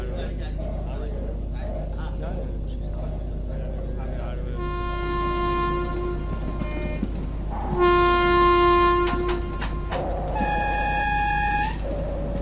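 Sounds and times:
mail train rumbling along: 0.0s - 12.4s
mail train horn blasts: 4.6s - 11.9s
continuous rolling noise of train wheels: 5.6s - 7.8s, 8.8s - 12.4s.

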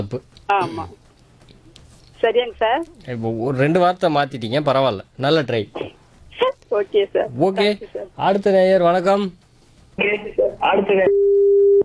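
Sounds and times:
speech: 0.0s - 1.0s, 2.2s - 9.4s, 10.0s - 11.5s
telephone line tone after a caller's call is cut off: 10.9s - 11.8s.

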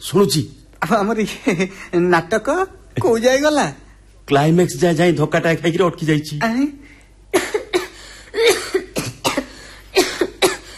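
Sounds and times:
speech: 0.0s - 7.5s
person coughing in harsh fits: 7.3s - 10.7s.

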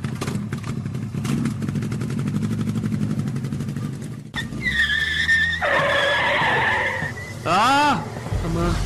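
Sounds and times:
motorcycle engine revving with a throbbing rumble: 0.0s - 8.7s
motorcycle tires skidding with a shrill screech: 4.4s - 8.3s.

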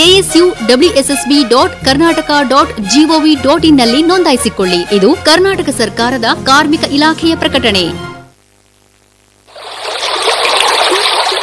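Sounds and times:
speech: 0.2s - 8.1s
rainwater flowing fast: 9.5s - 11.4s.

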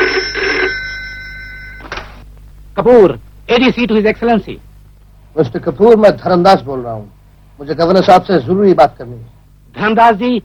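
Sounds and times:
telephone bell ringing: 0.0s - 2.2s
speech: 2.8s - 4.7s, 5.4s - 10.4s.

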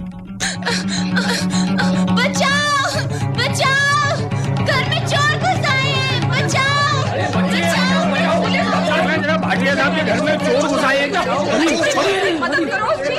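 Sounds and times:
people laughing: 0.6s - 2.8s, 6.2s - 13.1s
crowd of neighbours shouting and talking over one another: 1.1s - 13.1s.

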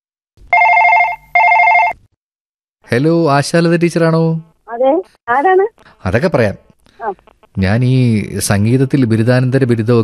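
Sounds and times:
telephone ringing on an outgoing call: 0.5s - 2.0s
speech: 2.9s - 10.0s.

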